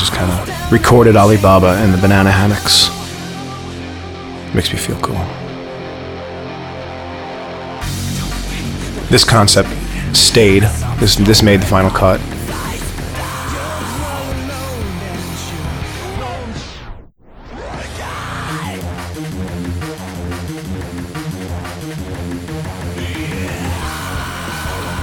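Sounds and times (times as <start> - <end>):
loud dense music mix: 0.0 - 16.5, 17.8 - 25.0
speech: 0.2 - 3.0, 4.5 - 5.4, 9.1 - 12.3
person screaming: 17.8 - 18.8, 23.0 - 25.0.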